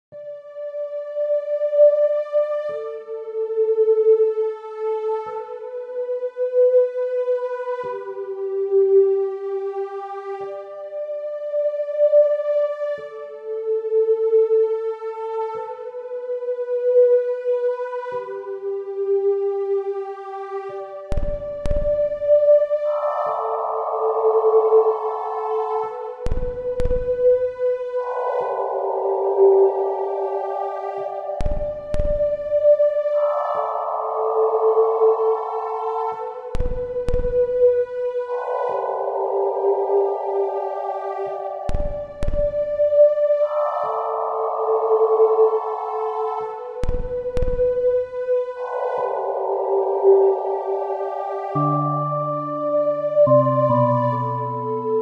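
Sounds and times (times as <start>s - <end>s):
peaceful ambient song: 0.1s - 54.9s.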